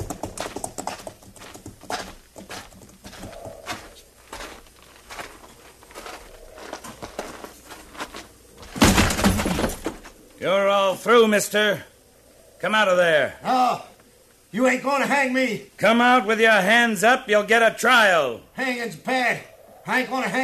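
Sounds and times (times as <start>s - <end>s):
horse hooves clip-clopping on hard ground: 0.0s - 10.2s
loud rustling burst: 0.0s - 11.0s
speech: 10.4s - 11.9s, 12.6s - 13.9s, 14.5s - 20.4s.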